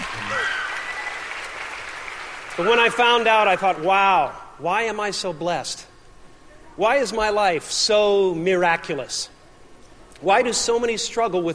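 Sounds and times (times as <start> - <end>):
crowd applauding: 0.0 - 4.2
speech: 2.6 - 5.9, 6.8 - 9.4, 10.2 - 11.5.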